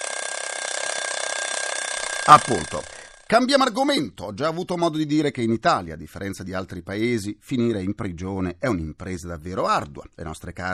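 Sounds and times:
mechanical alarm clock bell ringing: 0:00.0 - 0:03.3
speech: 0:02.3 - 0:10.7.

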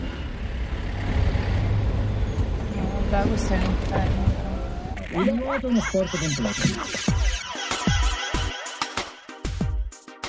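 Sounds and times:
city traffic of trucks and buses: 0:00.0 - 0:07.0
speech: 0:03.1 - 0:04.4, 0:05.1 - 0:07.3
laughter: 0:05.1 - 0:09.2.

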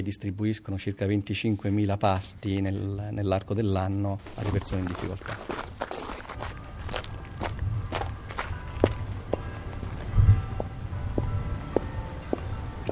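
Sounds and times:
speech: 0:00.0 - 0:05.8
footsteps on a cobblestone garden path of a villa: 0:04.2 - 0:12.9.

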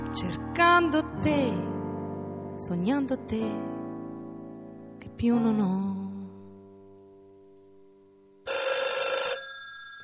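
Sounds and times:
speech: 0:00.1 - 0:01.7, 0:02.6 - 0:03.7, 0:05.2 - 0:06.0
telephone bell ringing with a bright metallic trill: 0:08.5 - 0:10.0.

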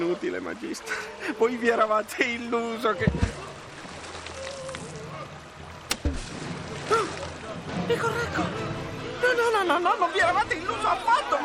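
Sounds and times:
speech: 0:00.0 - 0:03.5, 0:09.7 - 0:11.4
steady wash of water: 0:00.0 - 0:11.4
stones thrown splashing into water: 0:03.0 - 0:04.9, 0:05.8 - 0:07.4.

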